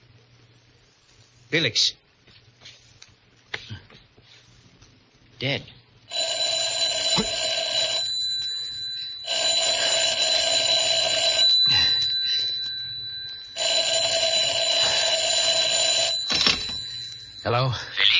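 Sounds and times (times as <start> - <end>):
speech: 1.5 - 2.0, 5.4 - 5.8, 17.5 - 18.1
telephone ringing with a loud metallic bell: 6.1 - 18.1.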